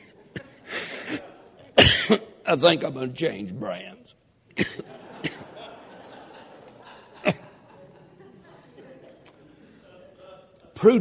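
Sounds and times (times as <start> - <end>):
laughter: 0.0 - 1.8, 4.7 - 10.9
person coughing: 1.8 - 2.4, 4.6 - 5.5, 7.2 - 7.5
speech: 2.1 - 5.0.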